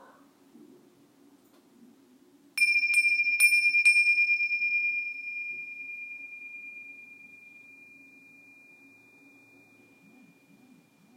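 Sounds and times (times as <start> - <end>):
faint low hum: 0.0 - 11.1
high-pitched bell struck on the street: 2.6 - 11.1.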